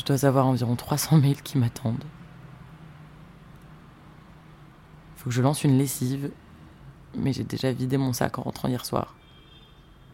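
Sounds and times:
speech: 0:00.0 - 0:02.2, 0:05.2 - 0:06.4, 0:07.1 - 0:09.2
distant cars passing on a road: 0:00.0 - 0:09.1
car horns honking: 0:09.2 - 0:10.1.

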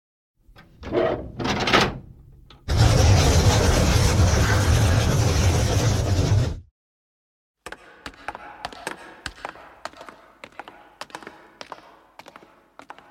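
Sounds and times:
short creaks and scrapes: 0:02.5 - 0:06.6
heavy doors of a building grinding open: 0:02.6 - 0:06.6.

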